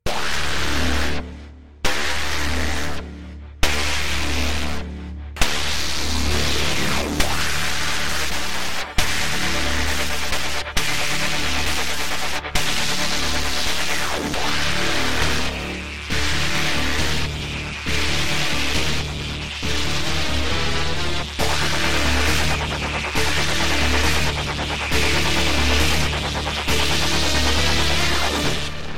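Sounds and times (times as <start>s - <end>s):
music without drums: 0.0s - 28.9s.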